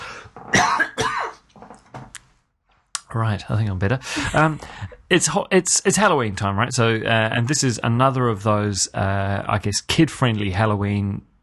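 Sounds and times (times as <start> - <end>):
person coughing: 0.5 - 1.4
speech: 3.2 - 11.3.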